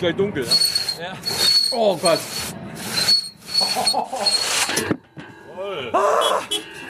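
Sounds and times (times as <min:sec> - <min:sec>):
speech: 0:00.0 - 0:02.6, 0:03.7 - 0:05.0, 0:05.6 - 0:06.6
hand saw rasping through wood: 0:00.5 - 0:04.8.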